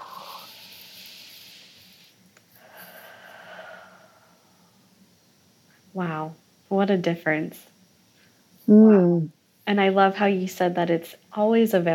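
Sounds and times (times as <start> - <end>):
deep breaths during a guided relaxation exercise: 0.0 - 4.9
speech: 6.0 - 7.7, 8.7 - 11.9.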